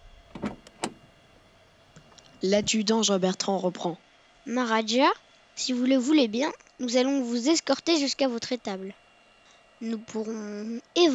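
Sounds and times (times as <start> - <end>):
limousine rear door being unlatched and opened: 0.0 - 2.5
speech: 2.4 - 9.0, 9.8 - 11.1.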